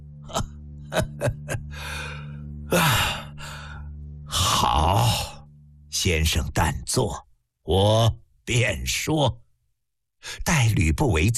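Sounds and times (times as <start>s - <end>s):
speech: 0.9s - 1.6s, 6.1s - 9.4s, 10.2s - 11.3s
person breathing heavily in rough breathy rasps: 1.6s - 4.5s.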